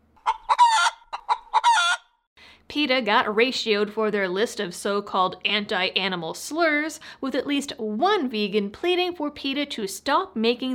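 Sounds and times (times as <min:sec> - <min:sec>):
chicken clucking and squawking: 0:00.2 - 0:02.2
speech: 0:02.8 - 0:10.7.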